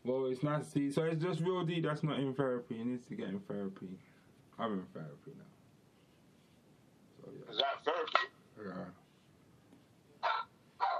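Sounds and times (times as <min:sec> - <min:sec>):
quiet low hum: 0:00.0 - 0:10.9
speech: 0:00.4 - 0:05.6, 0:07.2 - 0:09.0
dog barking: 0:10.2 - 0:10.9.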